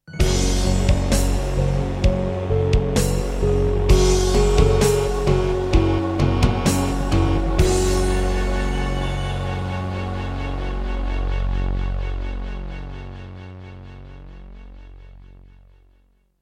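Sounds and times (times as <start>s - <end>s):
synthesizer music intro on a Korg X5DR: 0.1s - 15.6s.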